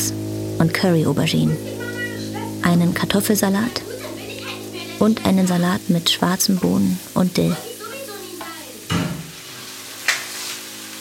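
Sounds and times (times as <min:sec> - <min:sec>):
calamari rings sizzling in a hot pan: 0:00.0 - 0:10.9
speech: 0:00.1 - 0:01.7, 0:02.6 - 0:03.8, 0:05.0 - 0:07.7
calamari pieces dropping into a pan: 0:08.9 - 0:10.6
scraping or stirring in a pan: 0:09.3 - 0:10.7.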